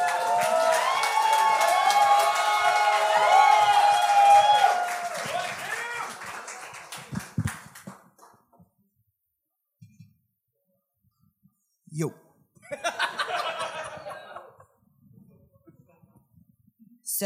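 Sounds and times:
comedy show crowd cheering with loud whoops and shouts: 0.0s - 6.6s
comedy show crowd applauding: 0.0s - 8.4s
speech: 12.0s - 12.2s
laughter: 12.6s - 16.3s.

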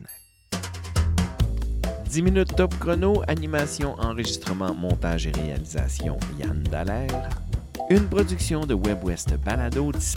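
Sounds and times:
timer bell ringing: 0.0s - 0.8s
speech: 2.1s - 10.1s.

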